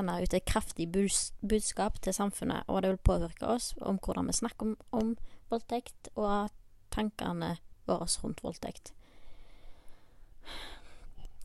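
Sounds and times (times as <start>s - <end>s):
speech: 0.0s - 9.0s, 10.4s - 10.8s
sharp gasping breath with breathy exhale: 9.0s - 11.2s.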